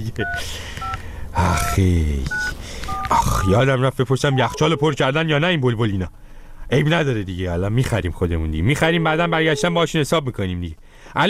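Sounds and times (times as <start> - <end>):
speech: 0.0 - 11.2
telephone keypad dialing tones placing a call: 0.2 - 3.6, 4.3 - 5.0.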